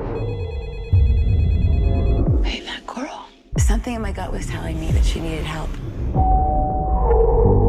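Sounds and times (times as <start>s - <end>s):
mobile phone ringing with a bright electronic ringtone: 0.2s - 2.4s
speech: 3.9s - 7.6s.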